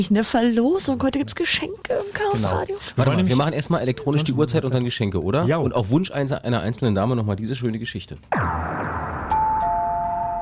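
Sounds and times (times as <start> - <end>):
speech: 0.0 - 8.6
doorbell chiming ding then lower dong: 9.3 - 10.4.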